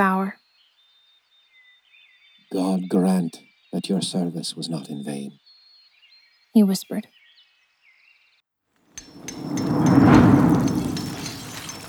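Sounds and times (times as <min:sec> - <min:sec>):
speech: 0:00.0 - 0:00.4, 0:02.5 - 0:05.4, 0:06.6 - 0:07.2
deep rolling rumble: 0:09.1 - 0:11.8
steady rain: 0:09.1 - 0:11.8.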